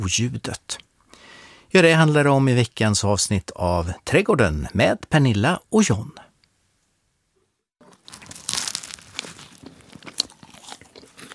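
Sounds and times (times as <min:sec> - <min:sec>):
speech: 0:00.0 - 0:00.9, 0:01.7 - 0:06.2
crisp bites of a flaky chocolate croissant: 0:07.8 - 0:11.3
wet chewing of a chocolate croissant: 0:07.8 - 0:11.3.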